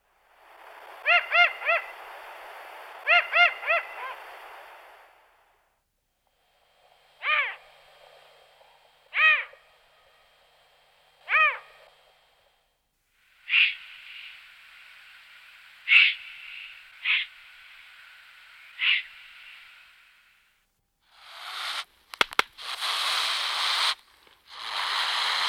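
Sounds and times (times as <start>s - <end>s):
eagle owl call: 0.4s - 5.1s, 7.2s - 7.8s, 9.0s - 12.1s, 13.3s - 20.5s, 22.6s - 25.4s.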